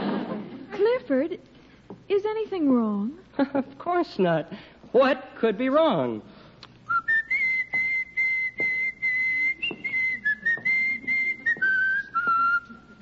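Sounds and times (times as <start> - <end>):
speech: 1.1 - 6.3
person whistling a march-like melody: 6.9 - 12.9.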